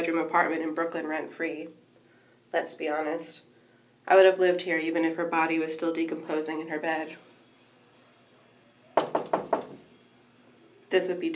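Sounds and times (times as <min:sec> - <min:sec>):
speech: 0:00.1 - 0:01.9, 0:02.5 - 0:07.3, 0:10.9 - 0:11.3
sharp knocks on an apartment door in Brooklyn: 0:09.0 - 0:09.8.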